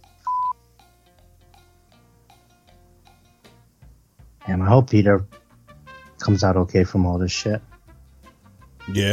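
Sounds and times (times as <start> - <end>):
faint hum: 0.0 - 9.1
single loud electronic beep: 0.2 - 0.6
speech: 4.6 - 5.4, 6.3 - 7.7, 8.9 - 9.1.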